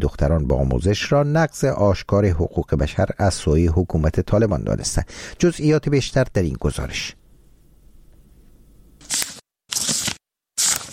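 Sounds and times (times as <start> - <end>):
speech: 0.0 - 7.2
low hum: 1.7 - 9.1
book pages being turned: 9.0 - 10.9.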